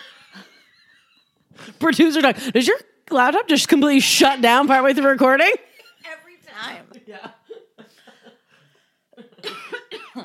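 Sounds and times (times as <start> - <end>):
speech: 1.8 - 5.7
harsh bursts of coughing: 9.4 - 10.2.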